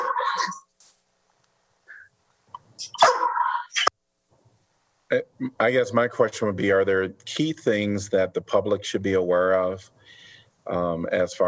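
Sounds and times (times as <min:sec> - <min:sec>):
puppy barking and yipping: 0:03.0 - 0:03.6
speech: 0:05.1 - 0:11.4.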